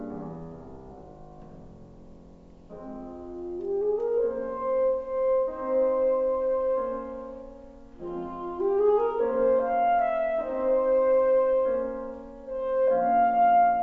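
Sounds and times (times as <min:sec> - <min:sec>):
saxophone: 0:03.3 - 0:13.8.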